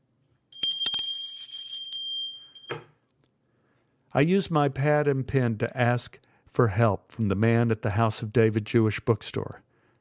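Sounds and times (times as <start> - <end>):
small desk bell ringing: 0.5 - 2.9
speech: 4.1 - 9.7.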